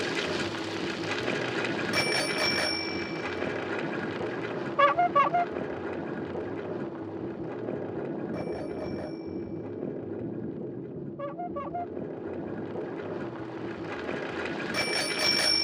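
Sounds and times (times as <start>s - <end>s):
steady rumbling traffic-like noise: 0.0s - 15.6s
bicycle bell ringing: 1.9s - 3.5s, 14.7s - 15.6s.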